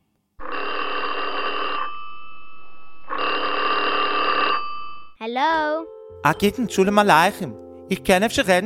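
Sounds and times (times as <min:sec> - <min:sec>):
steady tone: 0:00.4 - 0:05.2
telephone bell ringing: 0:00.4 - 0:05.2
speech: 0:05.2 - 0:08.6.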